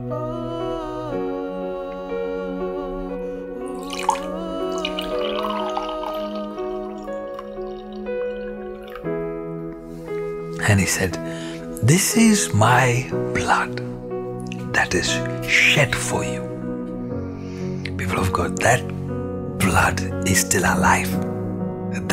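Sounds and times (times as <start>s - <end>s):
speech: 0.0s - 1.2s, 10.7s - 13.9s, 14.8s - 16.5s, 18.1s - 19.0s, 19.7s - 21.3s
steady sustained music: 0.0s - 22.1s
wine pouring into a cup: 3.7s - 9.2s.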